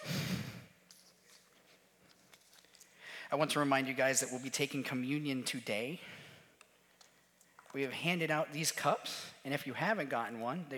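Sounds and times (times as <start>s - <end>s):
breathy exhale into a microphone at a church service: 0.0s - 0.7s, 2.8s - 3.4s, 6.0s - 6.6s
speech: 3.3s - 6.2s, 7.7s - 10.7s.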